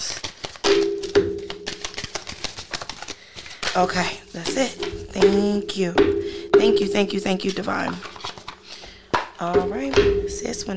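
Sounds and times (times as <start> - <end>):
deck of cards being shuffled with riffling and papery clicks: 0.0 - 5.5, 7.2 - 9.4
speech: 3.8 - 8.1, 9.4 - 10.7.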